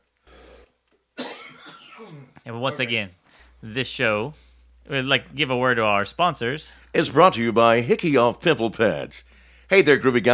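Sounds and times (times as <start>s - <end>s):
man clearing his throat: 1.2s - 3.0s
speech: 2.0s - 10.3s.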